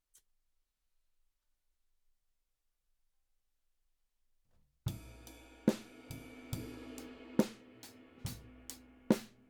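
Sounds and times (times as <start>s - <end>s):
drums: 4.8s - 9.4s.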